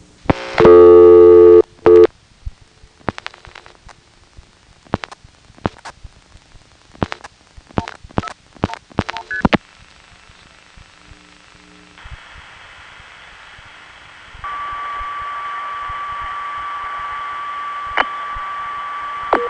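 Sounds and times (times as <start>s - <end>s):
steady telephone line tone on an international call: 0.3s - 2.1s, 14.4s - 19.4s
brief telephone line tone on an international call: 0.6s - 2.1s.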